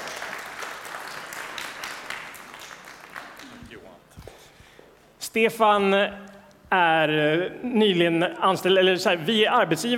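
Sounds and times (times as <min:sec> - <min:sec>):
crowd applauding: 0:00.0 - 0:03.9
speech: 0:05.3 - 0:09.9.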